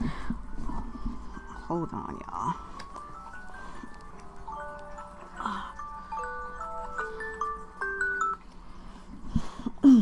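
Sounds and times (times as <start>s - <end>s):
low hum: 0.0s - 10.0s
speech: 1.7s - 2.7s
phone alarm playing electronic beeping melody: 2.6s - 8.5s.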